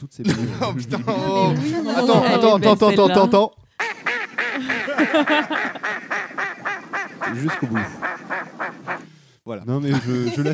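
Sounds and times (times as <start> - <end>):
speech: 0.0 - 3.6, 4.6 - 5.8, 7.3 - 8.1, 9.5 - 10.5
laughter: 0.2 - 3.5, 4.3 - 6.4, 7.2 - 8.3, 9.8 - 10.5
duck quacking: 3.8 - 9.1.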